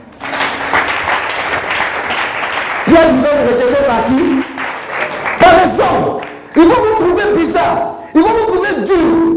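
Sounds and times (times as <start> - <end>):
church congregation applauding during a worship service: 0.0 - 7.4
speech: 2.9 - 4.4, 5.5 - 9.2.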